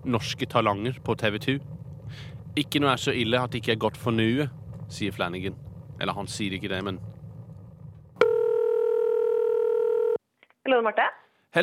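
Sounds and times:
speech: 0.0 - 7.1, 10.6 - 11.6
telephone dial tone on an outgoing call: 8.2 - 10.2.

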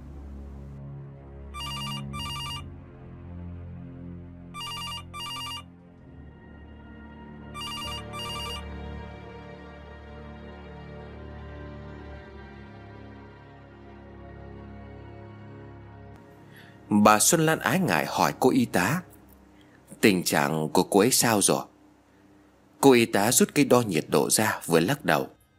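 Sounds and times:
telephone ringing in electronic double trills: 1.6 - 2.7, 4.6 - 5.7, 7.6 - 8.6
speech: 16.9 - 19.1, 20.0 - 21.7, 22.8 - 25.4.

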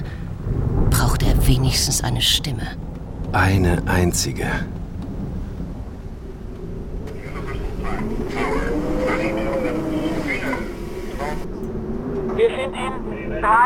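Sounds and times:
thunder from a thunderstorm rumbling: 0.0 - 13.6
speech: 1.5 - 4.8, 12.4 - 13.6
faint tonal sounds: 2.8 - 13.6.

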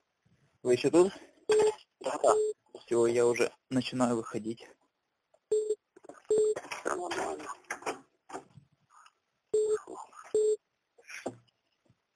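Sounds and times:
speech: 0.6 - 4.8
telephone tones calling a second line during a phone call: 1.5 - 2.6, 5.5 - 6.6, 9.6 - 10.6.

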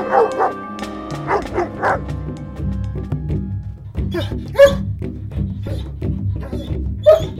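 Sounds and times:
dog barking and yipping in a children's story: 0.0 - 0.6, 1.2 - 2.0, 4.1 - 4.8, 5.6 - 7.3
steady music: 0.0 - 7.3.

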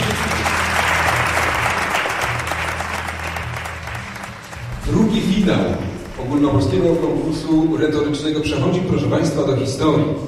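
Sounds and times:
audience applause at a Polish rhetoric contest final: 0.0 - 7.1
speech: 6.4 - 10.2.

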